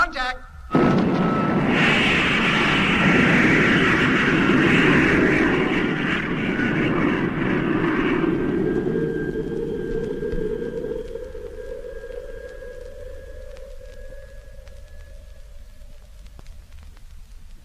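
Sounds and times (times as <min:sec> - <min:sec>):
spacecraft descent motor firing: 0:00.7 - 0:14.6.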